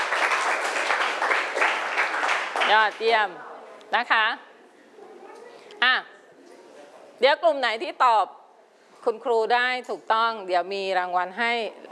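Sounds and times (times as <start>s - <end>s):
classroom applause for a group of students: 0.0s - 3.0s
speech: 2.7s - 4.5s, 7.2s - 8.4s, 9.0s - 11.9s.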